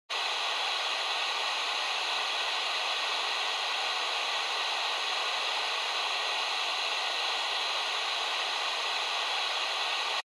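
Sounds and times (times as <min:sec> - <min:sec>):
FM radio signal noise: 0:00.2 - 0:10.2.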